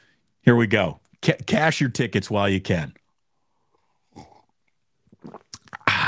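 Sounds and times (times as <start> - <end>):
speech: 0.4 - 3.0, 5.2 - 5.4
sipping a drink from a cup without a lid: 4.1 - 6.0.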